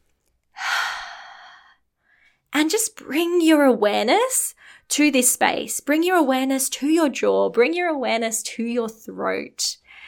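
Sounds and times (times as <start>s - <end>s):
deep exhale during a guided relaxation breathing exercise: 0.6s - 1.8s
speech: 2.7s - 9.8s.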